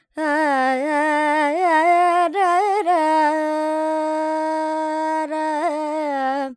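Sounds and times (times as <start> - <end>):
Carnatic female vocal alap in Lydian mode in G: 0.1 - 6.5.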